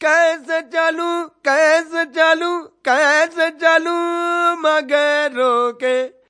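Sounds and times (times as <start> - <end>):
man singing Indian devotional song: 0.0 - 6.2.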